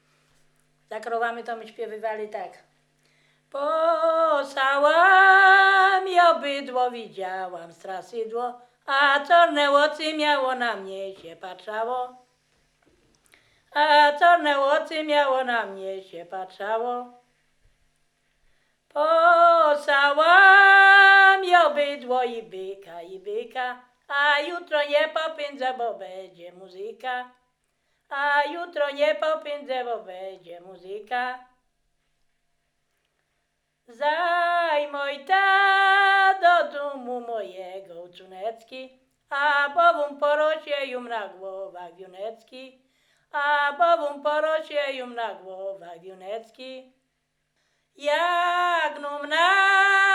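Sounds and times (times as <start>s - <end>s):
folk ditties sung in a meadow: 3.6s - 12.2s, 13.8s - 17.2s, 19.0s - 27.3s, 28.1s - 31.4s, 33.9s - 42.7s, 43.4s - 46.8s, 48.0s - 50.1s.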